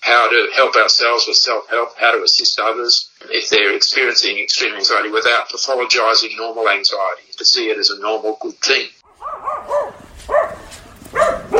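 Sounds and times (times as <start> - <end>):
speech: 0.1 - 10.0
dog barking: 9.0 - 11.5.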